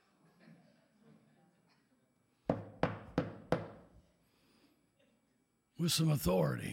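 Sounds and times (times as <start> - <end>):
forceful fist knocks on a door: 2.5 - 3.9
speech: 5.8 - 6.7.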